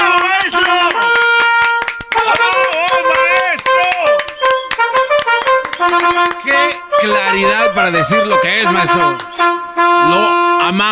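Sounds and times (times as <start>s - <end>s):
one person clapping hands quickly: 0.0s - 6.8s, 9.1s - 9.4s
speech: 7.4s - 10.9s.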